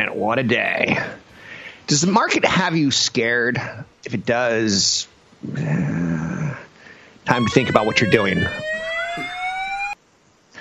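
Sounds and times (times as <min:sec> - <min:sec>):
speech: 0:00.0 - 0:01.2, 0:01.9 - 0:06.0, 0:07.3 - 0:08.7
fire alarm blaring with a harsh electronic tone: 0:07.3 - 0:10.0.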